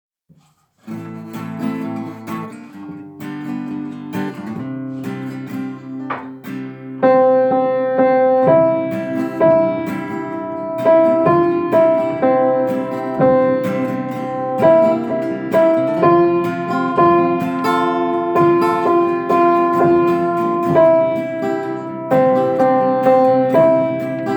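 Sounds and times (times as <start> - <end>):
alto piano: 5.6 - 24.3.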